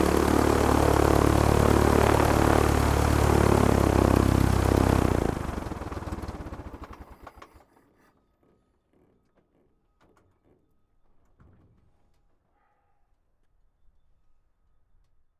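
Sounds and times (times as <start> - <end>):
engine shutting off: 0.0 - 7.4.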